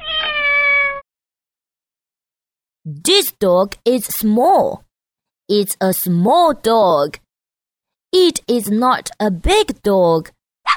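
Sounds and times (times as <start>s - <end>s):
small dirty cat meowing: 0.0s - 1.0s
speech: 2.9s - 4.9s, 5.5s - 7.2s, 8.1s - 10.4s.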